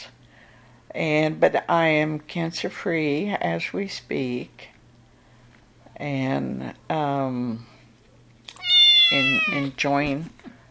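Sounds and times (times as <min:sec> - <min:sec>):
faint steady hum: 0:00.0 - 0:10.6
speech: 0:00.9 - 0:04.7, 0:06.0 - 0:07.7, 0:09.1 - 0:10.5
domestic cat meowing: 0:08.5 - 0:09.8.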